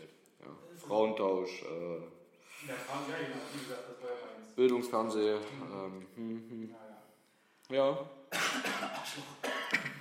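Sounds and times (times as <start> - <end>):
speech: 0.4 - 7.0, 7.7 - 9.8
harsh raspy coughs: 8.3 - 10.0.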